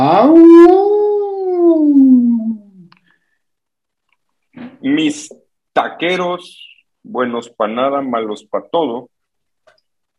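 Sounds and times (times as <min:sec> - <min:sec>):
person howling like a wolf: 0:00.0 - 0:02.8
speech: 0:04.8 - 0:09.1.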